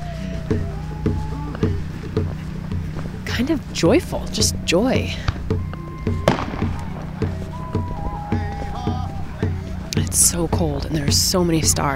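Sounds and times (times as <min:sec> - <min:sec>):
voices singing and cheering at a pipeline protest camp: 0:00.0 - 0:02.6, 0:03.6 - 0:11.9
speech: 0:00.5 - 0:01.2, 0:03.4 - 0:06.4, 0:10.2 - 0:11.9
fireworks thumping and popping on a cold night: 0:05.2 - 0:08.1.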